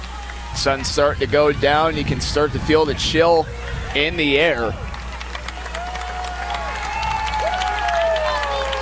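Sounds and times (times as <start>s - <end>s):
light breeze: 0.0s - 8.8s
stadium crowd of fans roaring and cheering at a football game: 0.0s - 8.8s
speech: 0.6s - 4.9s
people shouting: 5.8s - 8.8s.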